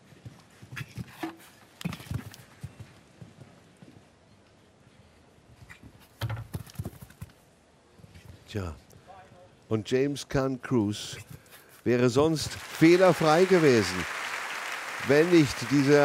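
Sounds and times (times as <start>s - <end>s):
horse hooves clip-clopping on a show jumping course: 0.0s - 4.1s, 6.4s - 7.4s
speech: 8.5s - 8.8s, 9.7s - 14.2s, 15.0s - 16.0s.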